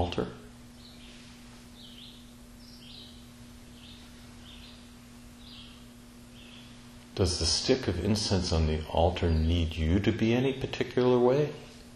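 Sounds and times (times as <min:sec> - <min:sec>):
low constant hum: 0:00.0 - 0:11.9
steady hiss: 0:00.0 - 0:11.9
bird singing: 0:00.7 - 0:06.9
speech: 0:07.2 - 0:11.7.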